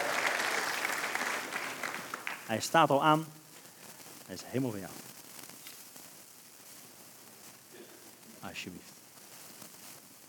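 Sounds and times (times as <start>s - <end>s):
audience applause: 0.0s - 2.7s
speech: 2.5s - 3.4s, 4.3s - 5.1s, 8.5s - 9.0s.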